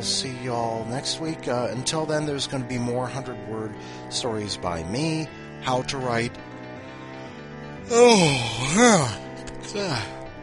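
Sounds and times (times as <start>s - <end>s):
speech: 0.0s - 6.5s, 7.9s - 10.2s
person yawning: 7.9s - 10.2s.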